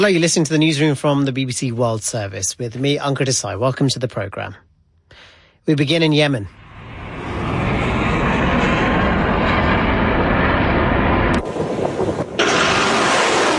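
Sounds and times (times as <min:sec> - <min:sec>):
speech: 0:00.0 - 0:04.7, 0:05.6 - 0:06.6
missiles firing in a port city: 0:06.7 - 0:13.5.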